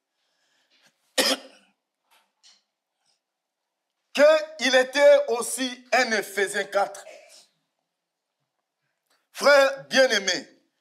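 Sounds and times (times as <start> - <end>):
person coughing: 1.2 - 1.8
speech: 4.2 - 7.2, 9.4 - 10.5.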